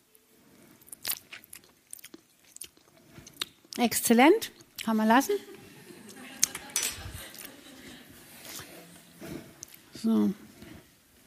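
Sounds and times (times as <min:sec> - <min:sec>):
chewing and mouth smacks while tasting sour cream: 0:00.8 - 0:03.8
speech: 0:03.8 - 0:05.5, 0:10.0 - 0:10.4
laughter: 0:05.3 - 0:08.5.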